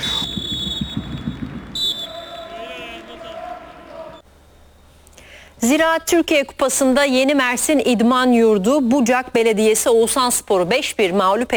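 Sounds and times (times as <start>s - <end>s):
referee's whistle signalling kickoff of a cup football match: 0.0s - 4.2s
steady murmur of football crowd: 1.5s - 4.2s
speech: 5.6s - 11.5s.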